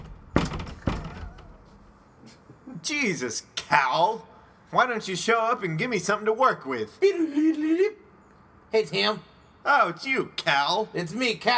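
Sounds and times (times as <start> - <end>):
head banging against a wall: 0.0 - 2.0
speech: 2.8 - 8.0, 8.7 - 11.5.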